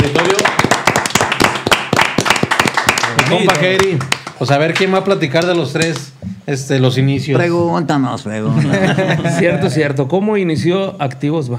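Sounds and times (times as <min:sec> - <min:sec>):
small group clapping: 0:00.0 - 0:06.1
speech: 0:03.3 - 0:11.5
laughter: 0:08.5 - 0:09.8.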